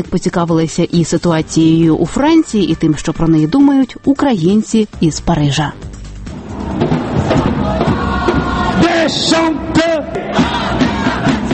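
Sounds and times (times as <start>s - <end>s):
speech: 0.0s - 5.9s, 9.1s - 9.9s
sharp rising cries: 6.3s - 11.1s
agitated crowd shouting during street riot: 6.4s - 11.5s.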